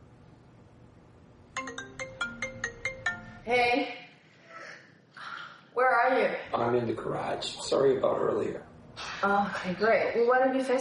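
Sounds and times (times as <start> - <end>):
phone ringtone with bright chiming electronic notes: 1.6 - 3.7
speech: 3.4 - 4.0, 5.8 - 10.7.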